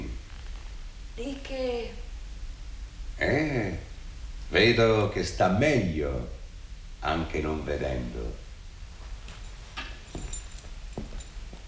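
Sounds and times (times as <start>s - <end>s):
low hum: 0.0s - 11.6s
speech: 1.2s - 2.0s, 3.2s - 3.9s, 4.5s - 6.4s, 7.0s - 8.4s
study keys jingling as they are handed over: 9.2s - 11.6s.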